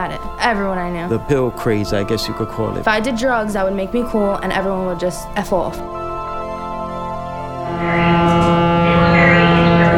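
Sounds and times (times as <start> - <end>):
speech: 0.0 - 6.0
ferry ship horn: 7.1 - 9.9
ferry ship engine rumble: 7.6 - 9.9.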